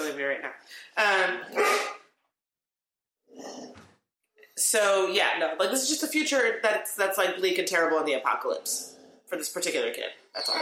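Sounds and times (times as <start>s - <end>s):
speech: 0.2s - 1.9s, 4.6s - 10.5s
dog barking: 1.5s - 2.0s.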